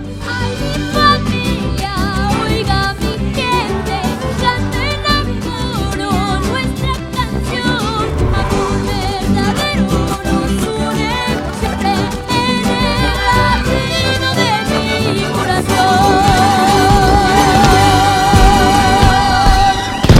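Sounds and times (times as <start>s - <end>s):
lively full-band song from an animated film soundtrack: 0.0s - 20.1s.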